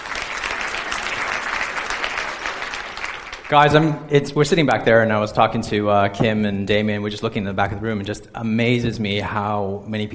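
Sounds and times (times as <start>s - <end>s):
room full of people applauding: 0.0s - 3.9s
speech: 3.5s - 10.1s.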